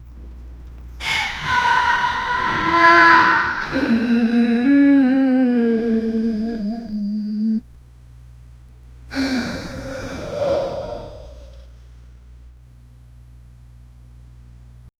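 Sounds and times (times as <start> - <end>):
agonized breathy monster moans: 1.0 - 7.6, 9.1 - 11.7.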